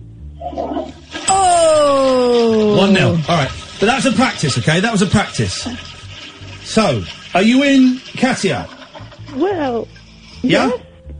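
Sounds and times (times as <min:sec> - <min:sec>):
faint whistling whine of toilet tank draining: 0:00.4 - 0:09.3
toilet flushing: 0:00.4 - 0:10.7
speech: 0:02.8 - 0:05.9, 0:06.7 - 0:10.8.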